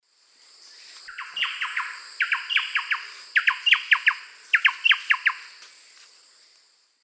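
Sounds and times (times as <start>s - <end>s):
Campylorhynchus turdinus duet in the Eastern Lowlands of South America: 0.6s - 5.5s.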